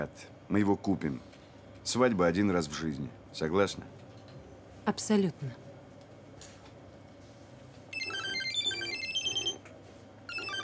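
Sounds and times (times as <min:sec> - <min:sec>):
speech: 0:00.0 - 0:04.0, 0:04.8 - 0:05.6
mobile phone on a book on a table playing a high-pitched ringtone: 0:07.9 - 0:09.6, 0:10.3 - 0:10.6.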